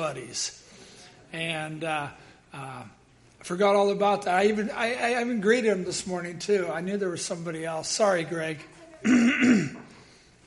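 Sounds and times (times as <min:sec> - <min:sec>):
speech: 0:00.0 - 0:00.6, 0:01.3 - 0:09.8
person clearing throat with a rasping voiced hum: 0:09.0 - 0:09.9.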